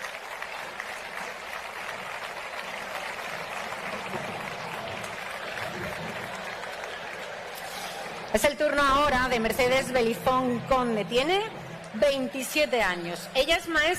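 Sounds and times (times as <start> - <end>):
large audience applause: 0.0 - 8.4
speech: 8.4 - 13.9.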